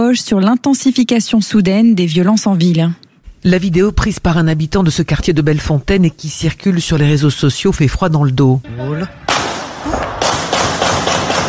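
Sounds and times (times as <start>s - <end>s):
speech: 0.0s - 10.0s
automatic weapon fired repeatedly on a city street: 9.3s - 11.4s.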